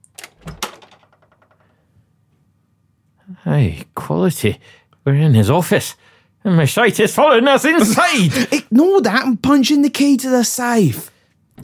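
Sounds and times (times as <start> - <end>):
door being unlocked and opened: 0.0 - 1.4
speech: 3.3 - 11.1.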